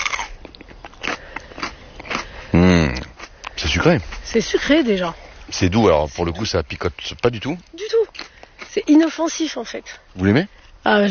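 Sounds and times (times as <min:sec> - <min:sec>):
person biting into a fresh chili pepper and chewing: 0:00.0 - 0:10.8
person making a short voiced hum: 0:02.6 - 0:03.1
speech: 0:03.8 - 0:08.0, 0:08.7 - 0:11.0.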